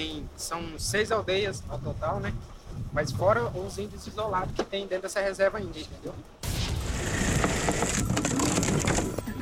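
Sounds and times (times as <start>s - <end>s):
speech: 0.0s - 6.4s
makeshift wooden walkway cracking and splintering in an indigenous forest reserve: 6.4s - 9.3s.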